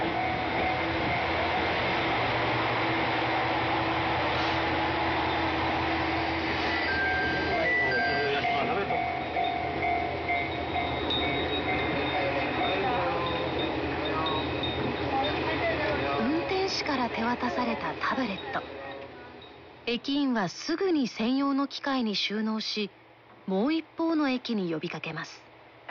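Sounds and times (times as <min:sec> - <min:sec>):
train pulling into a station with wheels rumbling on rails: 0:00.0 - 0:19.8
speech: 0:19.9 - 0:25.5.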